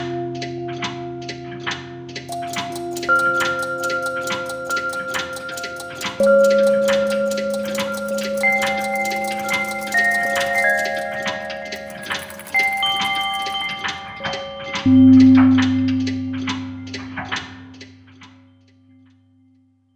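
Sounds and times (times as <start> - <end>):
synthesized percussion from a percussion synthesizer: 2.2 - 18.2.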